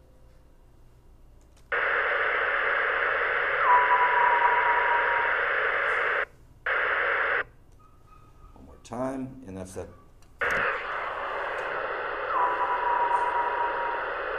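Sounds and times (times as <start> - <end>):
steady radio static hiss: 1.7 - 7.5, 10.4 - 14.3
speech: 9.7 - 10.0.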